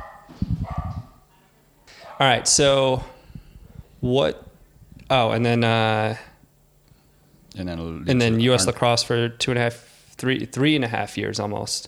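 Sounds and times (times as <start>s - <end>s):
dog barking: 0.0s - 1.1s, 2.0s - 2.4s
speech: 2.2s - 3.2s, 4.0s - 4.5s, 5.1s - 6.3s, 7.6s - 11.8s.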